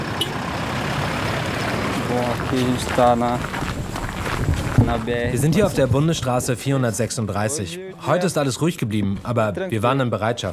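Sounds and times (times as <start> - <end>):
cars rolling past on a gravel road: 0.0 - 7.0
speech: 2.4 - 3.6, 4.9 - 10.5.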